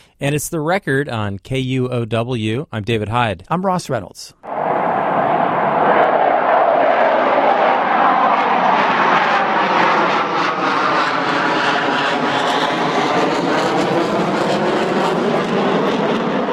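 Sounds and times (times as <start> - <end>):
speech: 0.2 - 4.4
EA-18 Growler military jet plane flying overhead from a naval air station: 4.4 - 16.5.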